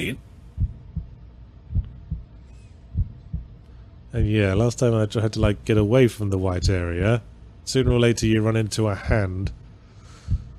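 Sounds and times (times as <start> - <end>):
speech: 0.0 - 0.3, 4.1 - 9.6
ominous heartbeat in a video game: 0.0 - 4.8, 5.4 - 10.5.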